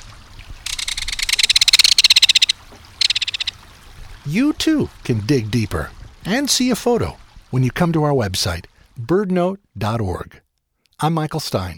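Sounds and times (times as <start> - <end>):
belted kingfisher rattle call along a stream: 0.7 - 3.6
speech: 4.2 - 10.4, 11.0 - 11.7.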